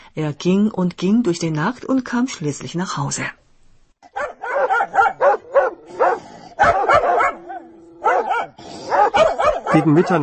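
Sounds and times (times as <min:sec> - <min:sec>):
speech: 0:00.2 - 0:03.4, 0:09.2 - 0:10.2
two dogs barking excitedly: 0:04.0 - 0:10.2.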